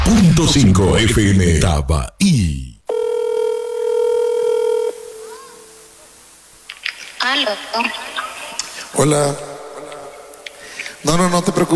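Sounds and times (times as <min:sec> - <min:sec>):
faint noise: 0:00.0 - 0:11.7
speech: 0:00.1 - 0:02.7, 0:07.4 - 0:08.1, 0:08.9 - 0:09.5, 0:11.0 - 0:11.7
steady electronic telephone tone as a call is placed: 0:02.9 - 0:05.9.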